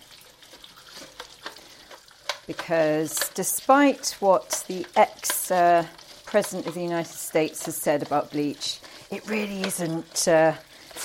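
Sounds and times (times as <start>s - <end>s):
running water rinsing a bird feeder: 0.0s - 11.0s
speech: 2.5s - 11.0s.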